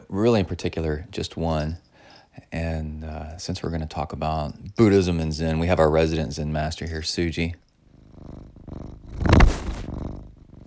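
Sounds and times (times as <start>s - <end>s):
speech: 0.1s - 7.6s
pet cat purring: 2.6s - 10.6s.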